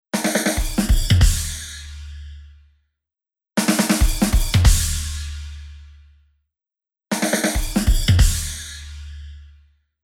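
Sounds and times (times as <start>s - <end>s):
drums with wide phaser effect: 0.2s - 1.8s, 3.6s - 5.4s, 7.1s - 8.9s.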